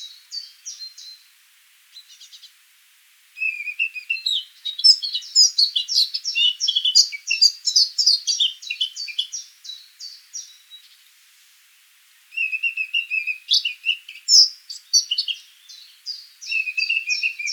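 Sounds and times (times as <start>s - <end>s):
Eurasian blackcap Sylvia atricapilla song: 0.0s - 1.3s, 1.9s - 2.6s, 3.4s - 11.1s, 12.3s - 17.5s.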